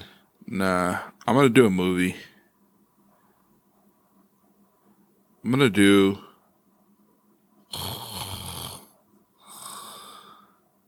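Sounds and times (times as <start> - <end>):
speech: 0.5 - 2.3, 5.4 - 6.3, 7.7 - 8.0
heavy raspy breathing into a microphone: 7.8 - 10.6.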